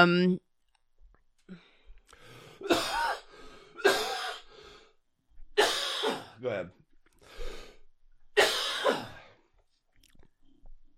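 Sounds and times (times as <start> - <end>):
speech: 0.0 - 0.4, 6.4 - 6.8
faint breathing: 1.4 - 2.6, 3.2 - 3.8, 4.4 - 5.1, 7.2 - 8.0
man with hoarse voice coughing harshly: 2.6 - 4.5, 5.6 - 6.4, 8.4 - 9.3.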